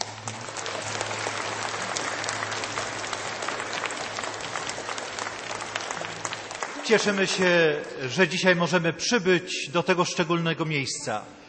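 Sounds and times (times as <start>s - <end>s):
applause from a large audience: 0.0s - 7.8s
speech: 6.9s - 11.4s.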